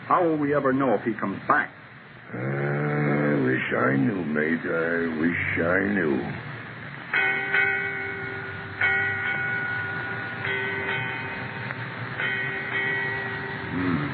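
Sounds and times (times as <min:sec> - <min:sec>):
speech: 0:00.1 - 0:02.6, 0:03.7 - 0:06.5
ship's bell ringing with clear metallic strikes: 0:07.1 - 0:14.1.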